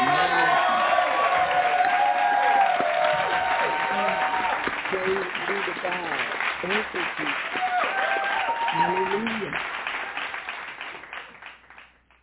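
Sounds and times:
scattered cheers: 0.0 - 4.8, 7.4 - 10.3
congregation hand-clap applause: 0.0 - 12.2.

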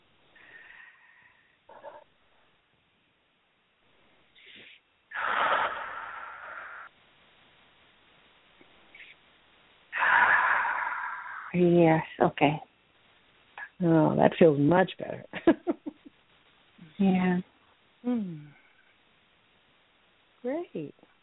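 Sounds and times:
deep breathing during a guided relaxation exercise: 0.3 - 1.9, 4.4 - 6.9, 9.9 - 11.6
speech: 11.6 - 12.7, 13.8 - 15.4, 17.0 - 18.5, 20.4 - 21.0.

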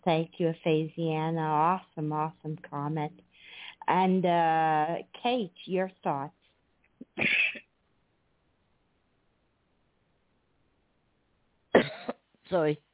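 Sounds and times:
speech: 0.0 - 6.4, 7.2 - 7.4, 12.5 - 12.9
harsh cough from a person who has lost their voice: 7.0 - 7.7, 11.8 - 12.2
raspy throat clearing: 7.0 - 7.7, 11.8 - 12.2.

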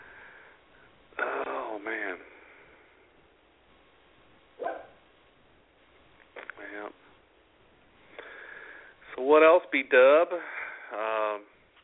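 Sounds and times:
dog barking with a sharp yap: 4.6 - 5.0
speech: 9.3 - 11.5.

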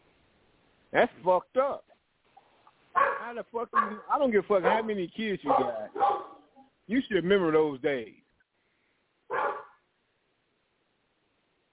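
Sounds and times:
speech: 0.9 - 1.9, 3.3 - 6.3, 6.9 - 8.2
dog barking: 2.9 - 6.7, 9.3 - 9.8.

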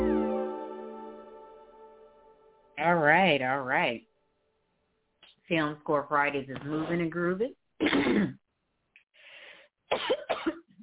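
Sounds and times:
speech: 2.8 - 4.1, 5.5 - 8.4, 9.9 - 10.3
person coughing: 7.8 - 8.4, 9.9 - 10.7
soft breathy exhale: 9.2 - 9.7.

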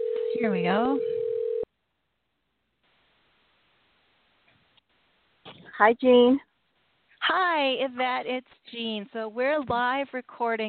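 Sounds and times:
steady telephone dialing tone: 0.0 - 1.7
speech: 0.4 - 1.2, 5.8 - 6.5, 7.3 - 10.6.

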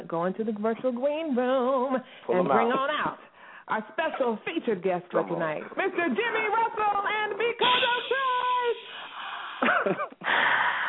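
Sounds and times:
speech: 0.1 - 8.3, 9.8 - 10.5
loud wheezy breathing into a microphone: 3.2 - 3.7, 8.8 - 9.6, 10.2 - 10.8.

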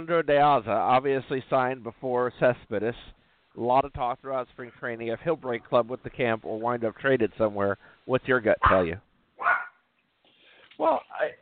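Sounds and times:
speech: 0.0 - 9.5, 10.8 - 11.3
single sharp loud dog bark: 8.6 - 9.8.

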